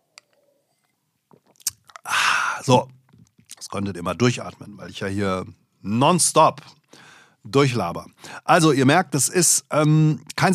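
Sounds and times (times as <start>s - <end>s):
person sipping and swallowing a beverage: 1.3s - 3.6s
mouth clicks: 1.4s - 3.6s
speech: 2.6s - 3.0s, 3.7s - 10.5s.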